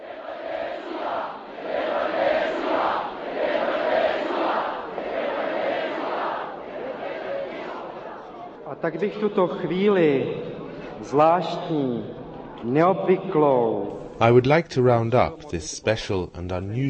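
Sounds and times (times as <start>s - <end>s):
large outdoor crowd at a demonstration roaring and chanting: 0.0s - 8.6s
speech: 8.8s - 16.8s.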